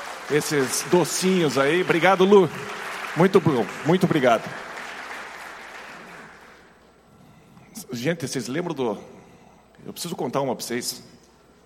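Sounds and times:
audience applauding: 0:00.0 - 0:06.8
speech: 0:00.3 - 0:04.7, 0:07.9 - 0:09.2, 0:09.8 - 0:11.2.

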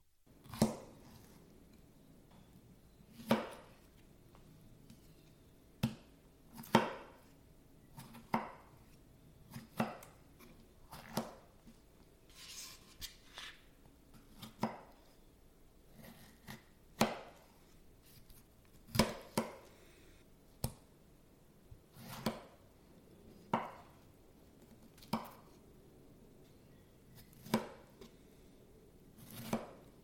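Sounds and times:
knife chopping tomatoes on a cutting board: 0:00.4 - 0:01.4, 0:03.1 - 0:03.9, 0:05.8 - 0:07.3, 0:07.9 - 0:11.5, 0:14.1 - 0:15.0, 0:15.9 - 0:17.7, 0:18.9 - 0:19.7, 0:21.9 - 0:22.6, 0:23.5 - 0:24.0, 0:25.0 - 0:25.6, 0:27.2 - 0:28.1, 0:29.2 - 0:29.9.

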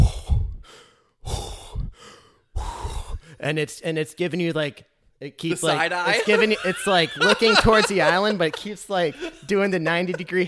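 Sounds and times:
human voice imitating the deep breath of an annoyed brown bear swimming: 0:00.0 - 0:03.4
speech: 0:03.4 - 0:10.4
laughter: 0:05.5 - 0:10.4.

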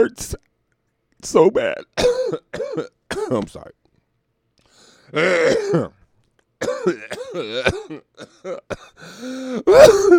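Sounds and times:
speech: 0:00.0 - 0:00.5, 0:01.2 - 0:03.8, 0:05.1 - 0:06.0, 0:06.6 - 0:10.1
person in a harsh raspy coughing fit: 0:01.8 - 0:03.4, 0:05.1 - 0:06.0, 0:06.6 - 0:10.1.

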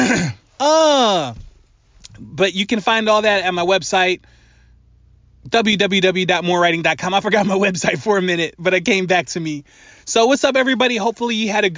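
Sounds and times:
man clearing his throat: 0:00.0 - 0:00.5
speech: 0:00.2 - 0:01.4, 0:02.2 - 0:04.4, 0:05.4 - 0:11.7.

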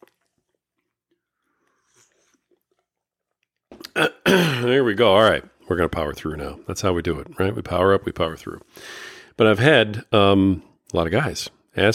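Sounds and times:
slurping and swallowing: 0:00.0 - 0:04.3
person sipping a drink: 0:00.0 - 0:04.4
speech: 0:04.0 - 0:11.9.

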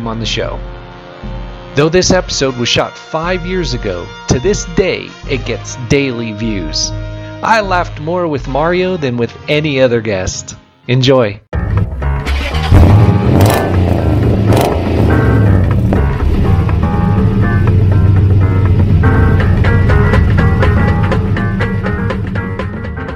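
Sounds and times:
speech: 0:00.0 - 0:11.4
Mini car engine running and revving: 0:12.2 - 0:22.9.

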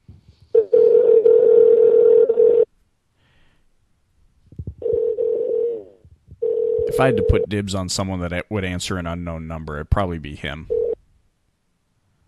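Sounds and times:
long electronic telephone tones of a call being placed: 0:00.6 - 0:02.7, 0:04.8 - 0:07.5, 0:10.7 - 0:11.0
speech: 0:07.0 - 0:10.8.

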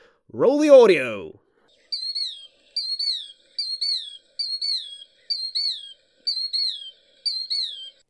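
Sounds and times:
speech: 0:00.3 - 0:01.4
killdeer calling: 0:01.8 - 0:08.0.

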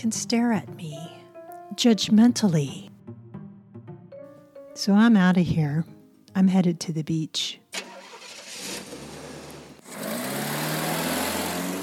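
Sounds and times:
speech: 0:00.0 - 0:01.1, 0:01.7 - 0:02.9, 0:04.8 - 0:07.6
car engine humming while driving: 0:07.8 - 0:11.8.

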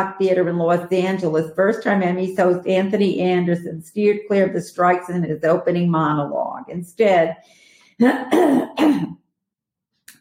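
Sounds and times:
speech: 0:00.0 - 0:09.2
person with phlegm clearing throat: 0:08.0 - 0:09.2.

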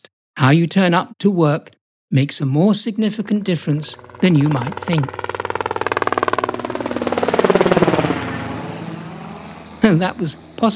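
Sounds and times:
speech: 0:00.4 - 0:05.3, 0:09.9 - 0:10.7
helicopter droning engine whine: 0:03.2 - 0:10.7
helicopter rotor thudding as it arrives: 0:03.2 - 0:10.7.

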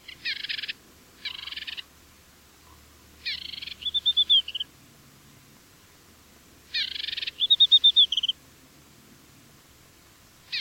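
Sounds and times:
African desert warbler singing: 0:00.0 - 0:01.9, 0:02.7 - 0:04.7, 0:06.7 - 0:08.4.

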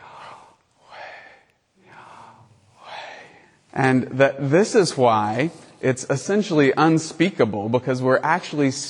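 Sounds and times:
person breathing audibly in a sermon: 0:00.0 - 0:03.8
speech: 0:03.8 - 0:08.8.

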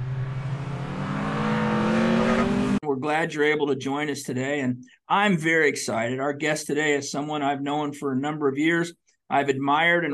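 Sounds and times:
race car engines revving with harmonic whine: 0:00.0 - 0:02.8
speech: 0:03.0 - 0:10.1.

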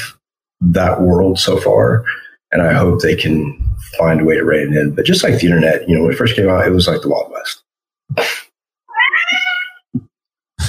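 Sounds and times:
speech: 0:00.6 - 0:08.4
pet cat meowing loudly: 0:08.9 - 0:09.8.

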